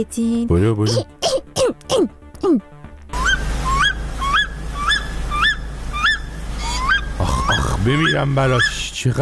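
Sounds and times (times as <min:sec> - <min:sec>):
speech: 0:00.0 - 0:02.7, 0:07.8 - 0:09.1
constant low hum: 0:00.0 - 0:09.1
harmonic honk-like calls: 0:03.1 - 0:08.9
canary chirping: 0:03.2 - 0:09.0.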